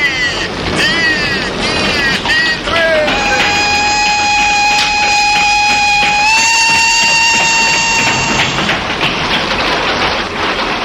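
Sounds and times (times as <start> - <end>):
train running on rails: 0.0 - 10.8
sustained high whistling tone: 3.1 - 8.8.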